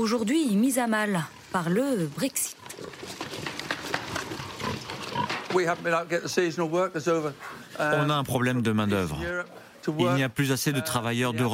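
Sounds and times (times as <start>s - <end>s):
speech: 0.0s - 2.9s, 5.5s - 11.5s
pigs grunting and snuffling on a farm: 1.2s - 6.4s.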